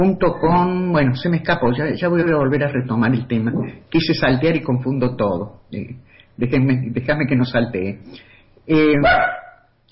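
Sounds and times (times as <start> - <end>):
speech: 0.0 - 9.4
dog recovering from an operation barking weakly: 9.0 - 9.7.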